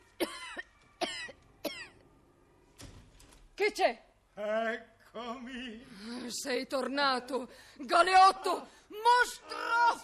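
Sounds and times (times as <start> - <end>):
woman coughing: 0.2 - 2.0
speech: 3.7 - 10.0.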